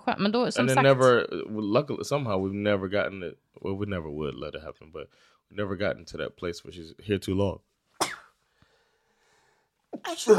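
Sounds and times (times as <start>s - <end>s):
speech: 0.1s - 7.7s, 9.9s - 10.3s
sharp sneeze: 8.0s - 8.4s.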